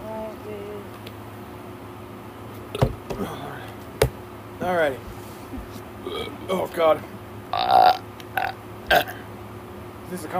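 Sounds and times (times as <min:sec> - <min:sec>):
speech: 0:04.7 - 0:05.1, 0:06.1 - 0:07.9, 0:10.1 - 0:10.3
drawn-out gurgling burp and shorter belches: 0:06.0 - 0:06.4, 0:07.5 - 0:09.2.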